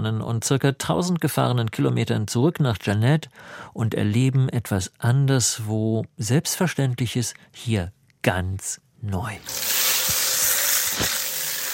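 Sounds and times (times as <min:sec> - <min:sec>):
speech: 0:00.0 - 0:09.7
shower spraying water: 0:09.4 - 0:11.7.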